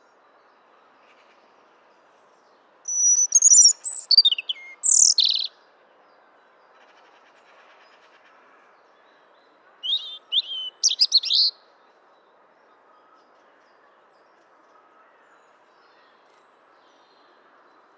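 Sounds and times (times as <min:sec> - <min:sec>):
European robin singing a high sweet warble: 0:02.9 - 0:05.5, 0:09.8 - 0:11.6.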